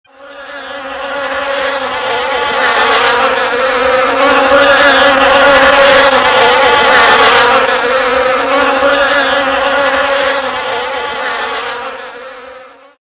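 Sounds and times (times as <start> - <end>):
bees buzzing: 0.1 - 12.9.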